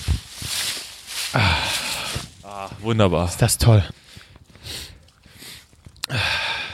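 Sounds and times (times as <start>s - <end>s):
slow deep breathing: 1.2s - 2.4s, 3.9s - 6.7s
speech: 2.5s - 4.8s.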